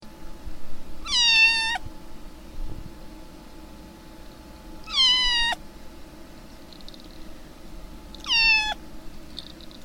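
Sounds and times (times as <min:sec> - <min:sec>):
kitten meowing: 0:01.0 - 0:01.8, 0:04.9 - 0:05.6, 0:08.2 - 0:08.8.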